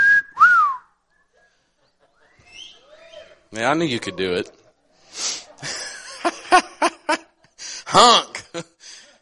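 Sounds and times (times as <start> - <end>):
audience member wolf whistling: 0.0 - 1.0
laughter: 1.1 - 9.2
speech: 3.5 - 4.6, 8.0 - 8.7.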